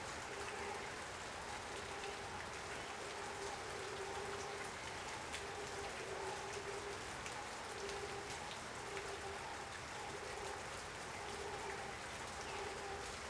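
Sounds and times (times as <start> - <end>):
rain in a swamp: 0.0 - 13.2.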